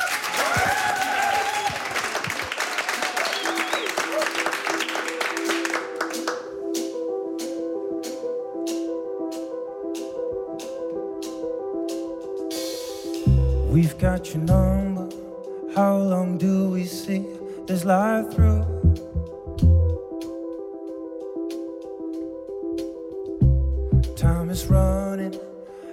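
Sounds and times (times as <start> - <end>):
audience applause for a performer at a music event: 0.0 - 6.5
music with regular repeated notes: 4.6 - 25.9
speech: 13.8 - 14.9, 15.8 - 18.6.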